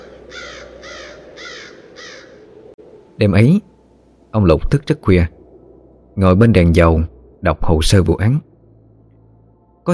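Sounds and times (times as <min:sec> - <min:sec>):
frightened crows cawing: 0:00.0 - 0:02.7
steady low noise: 0:00.0 - 0:09.9
speech: 0:03.2 - 0:03.7, 0:04.3 - 0:05.4, 0:06.2 - 0:08.5.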